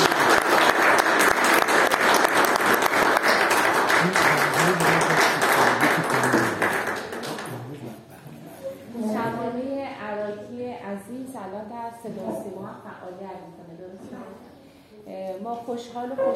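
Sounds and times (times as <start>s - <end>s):
audience applause: 0.0s - 7.9s
faint voices murmuring: 4.0s - 9.5s
speech: 15.5s - 16.3s.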